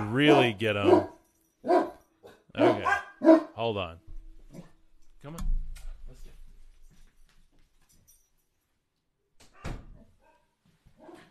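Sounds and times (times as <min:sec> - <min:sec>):
dog barking: 0:00.0 - 0:03.6
speech: 0:00.1 - 0:01.9, 0:02.6 - 0:04.6, 0:05.2 - 0:05.6.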